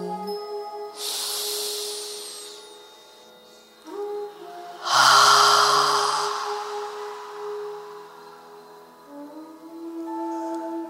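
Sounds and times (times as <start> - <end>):
deep breath in during a guided meditation: 1.0 - 9.1
soft steady drone: 1.0 - 9.7.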